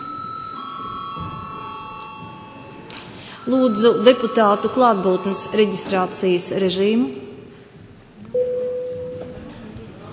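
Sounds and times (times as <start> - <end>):
continuous electric bell ringing in a parliament chamber: 0.0 - 6.6
speech: 3.4 - 7.3.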